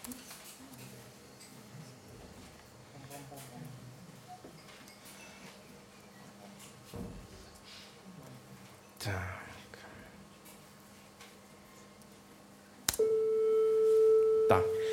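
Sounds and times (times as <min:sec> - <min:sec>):
generated pure tone at concert pitch A: 0:13.0 - 0:14.9
speech: 0:14.5 - 0:14.8.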